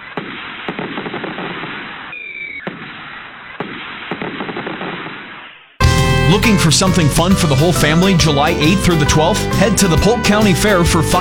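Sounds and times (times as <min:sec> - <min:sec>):
whistling firework rocket streak: 0:00.0 - 0:05.8
fireworks exploding in sharp bangs and dense crackling: 0:00.0 - 0:10.4
speech: 0:06.3 - 0:11.1.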